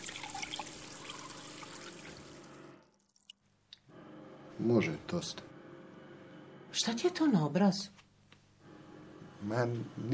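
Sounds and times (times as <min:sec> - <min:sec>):
water pouring: 0:00.0 - 0:03.4
speech: 0:04.6 - 0:05.5, 0:06.8 - 0:08.0, 0:09.4 - 0:10.1.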